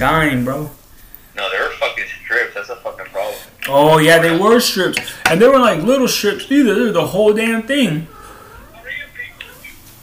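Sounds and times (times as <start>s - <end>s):
speech: 0.0s - 0.8s, 3.7s - 8.1s
short high-pitched soft cat meows: 8.0s - 9.8s.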